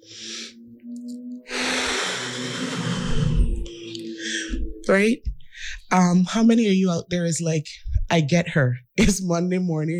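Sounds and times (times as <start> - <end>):
deep breath: 0.0 - 0.6, 1.5 - 4.6, 5.4 - 5.9
low rumble: 1.0 - 6.6
speech: 4.9 - 9.9.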